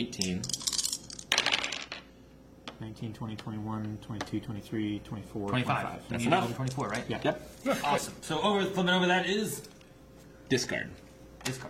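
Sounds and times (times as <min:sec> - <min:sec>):
speech: 0:00.0 - 0:00.6, 0:02.8 - 0:09.7, 0:10.5 - 0:11.6
dice rolling on a table: 0:00.2 - 0:02.1.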